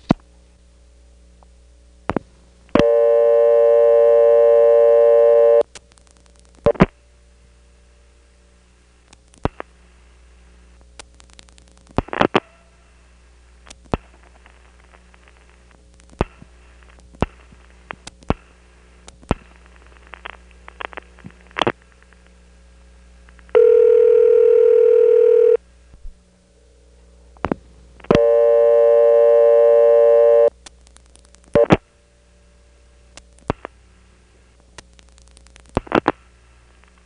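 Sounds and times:
constant low hum: 0.0s - 37.0s
telephone dial tone on an NX1 exchange: 2.8s - 5.6s, 23.5s - 25.6s, 28.1s - 30.5s.

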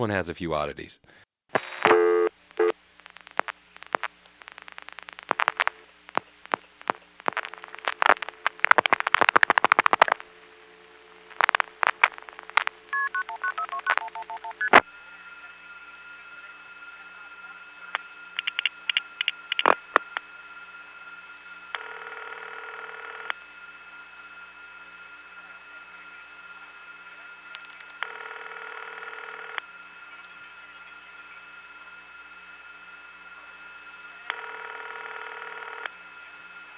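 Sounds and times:
speech: 0.0s - 1.7s
steady telephone tones: 1.6s - 36.7s
ringback-like telephone tone: 1.9s - 2.7s, 13.0s - 14.7s, 21.8s - 23.3s, 28.0s - 29.6s, 34.3s - 35.9s.

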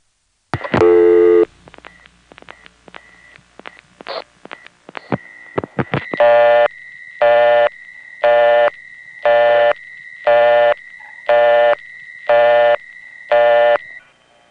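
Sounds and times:
steady telephone line tone: 0.7s - 1.5s, 5.3s - 14.4s.

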